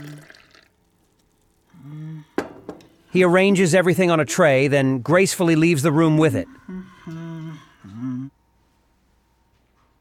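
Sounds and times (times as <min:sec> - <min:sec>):
man pouring tea into a cup at a wooden table in a tea room: 0:00.0 - 0:01.8
speech: 0:03.1 - 0:06.7.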